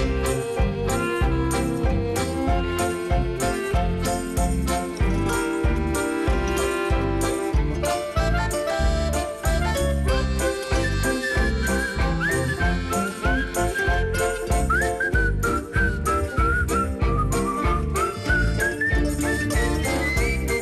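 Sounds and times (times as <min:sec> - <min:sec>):
loud full band accompaniment with a steady driving drum beat: 0:00.0 - 0:20.6
person whistling a melody: 0:00.0 - 0:20.6.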